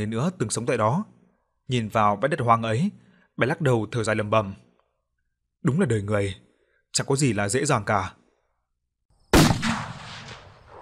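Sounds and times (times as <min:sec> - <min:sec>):
speech: 0:00.0 - 0:04.6, 0:05.6 - 0:08.2
gunshot: 0:09.3 - 0:10.8.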